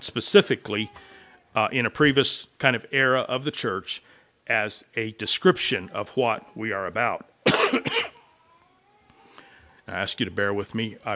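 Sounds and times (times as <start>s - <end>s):
speech: 0.0s - 8.1s, 9.9s - 11.1s
person coughing through a speaker system: 7.4s - 8.2s.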